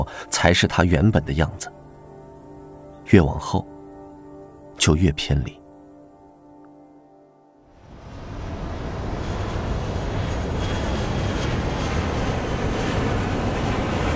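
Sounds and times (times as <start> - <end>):
speech: 0.0 - 1.8, 3.1 - 3.7, 4.8 - 5.6
fixed-wing airplane engine roaring while accelerating and taking off: 7.7 - 14.1.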